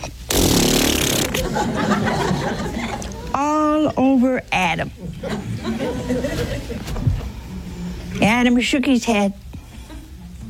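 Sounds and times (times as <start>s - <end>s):
person imitating elephant spraying water from trunk with mouth: 0.3s - 1.4s
laughter: 1.3s - 3.4s, 5.0s - 7.2s
speech: 3.8s - 7.1s, 8.2s - 9.4s.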